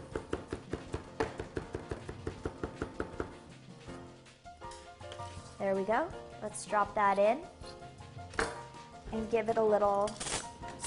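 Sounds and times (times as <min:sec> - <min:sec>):
knife chopping and mincing two garlic cloves: 0:00.0 - 0:03.4
speech: 0:05.6 - 0:07.6, 0:09.1 - 0:10.3.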